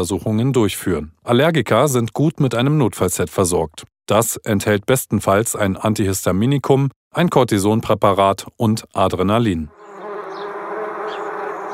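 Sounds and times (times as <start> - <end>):
speech: 0.0 - 9.8
wasp buzzing: 9.7 - 11.7.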